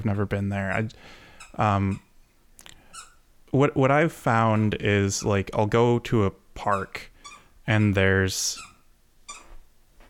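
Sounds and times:
speech: 0.0 - 2.1, 3.5 - 7.1, 7.7 - 8.7
dog squeaking a squeaky toy: 1.4 - 2.1, 2.9 - 3.2, 6.7 - 9.6.

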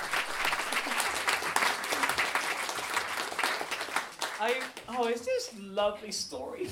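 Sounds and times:
audience applause: 0.0 - 4.8
speech: 4.5 - 6.6.

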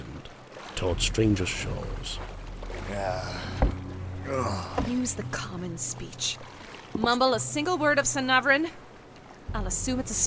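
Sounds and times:
small boat moving through water: 0.0 - 10.2
speech: 0.8 - 8.8, 9.5 - 10.2
sharp knock or splash: 3.5 - 3.8.

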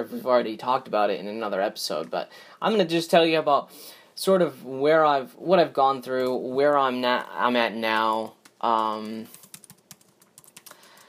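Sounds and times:
speech: 0.0 - 9.4
typing on a computer keyboard: 8.4 - 11.0.

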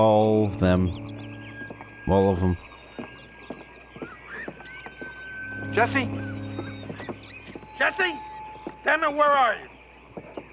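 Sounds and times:
speech: 0.0 - 1.1, 2.1 - 2.7, 5.7 - 6.4, 7.8 - 9.7
buzzards calling at a lake: 0.0 - 10.5.

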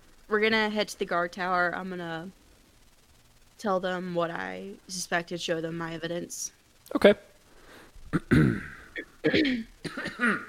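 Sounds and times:
speech: 0.3 - 2.4, 3.6 - 7.3, 8.1 - 10.4
person coughing: 8.2 - 10.4.

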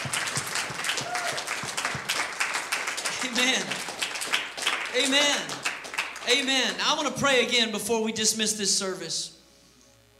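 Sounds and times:
church audience clapping during a service: 0.0 - 7.1
speech: 3.4 - 3.9, 5.0 - 5.6, 6.3 - 9.3.

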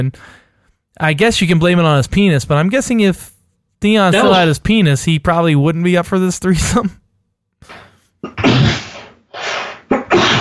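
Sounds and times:
speech: 0.0 - 0.4, 1.0 - 7.0, 7.6 - 8.8
person sneezing: 4.2 - 4.4, 7.7 - 10.4.

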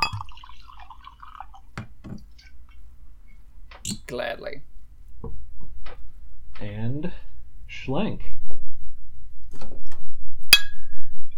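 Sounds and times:
wine glugging from a bottle into a glass: 0.0 - 2.3
speech: 4.1 - 4.7, 6.6 - 7.2, 7.9 - 8.3.

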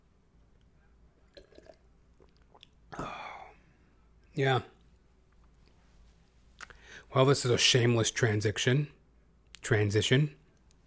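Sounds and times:
person sipping water: 0.6 - 3.6
speech: 4.4 - 4.7, 7.1 - 9.0, 9.6 - 10.4.

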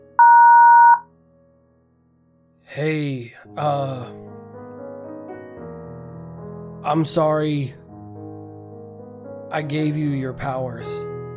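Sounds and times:
voicemail two-pitch electronic beep: 0.2 - 1.0
speech: 2.8 - 4.2, 6.8 - 7.8, 9.5 - 11.1.

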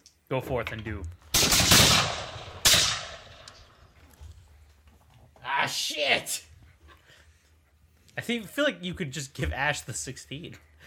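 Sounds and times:
speech: 0.3 - 1.3, 5.7 - 6.5, 8.2 - 10.8
gunshots: 1.3 - 3.5.

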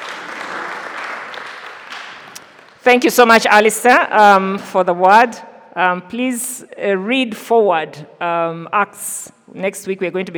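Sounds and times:
audience applause: 0.0 - 2.8
speech: 2.8 - 10.3.

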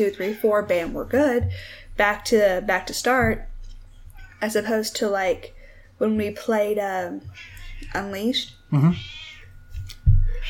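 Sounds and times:
speech: 0.0 - 3.5, 4.4 - 9.2
cat meowing: 7.2 - 8.0, 8.8 - 9.5, 10.3 - 10.4.

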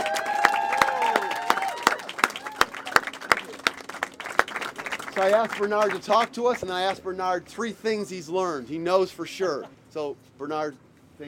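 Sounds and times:
audience clapping: 0.0 - 7.0
speech: 5.2 - 11.2.

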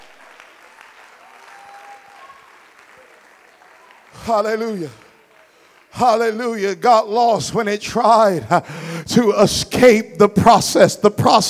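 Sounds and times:
crowd clapping: 0.0 - 7.2
speech: 4.2 - 5.0, 6.0 - 11.4.

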